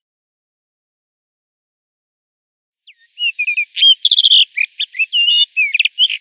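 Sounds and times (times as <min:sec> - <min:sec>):
Rufous-tailed rock thrush singing: 0:02.8 - 0:06.1.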